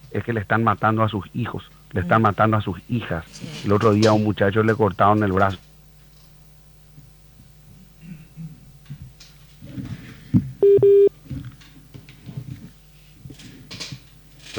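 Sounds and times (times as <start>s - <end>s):
voices talking on a telephone line: 0.0s - 5.6s
speech: 0.1s - 5.7s, 10.3s - 11.1s
short steady high telephone keypad beeps during an incoming call: 10.6s - 11.1s.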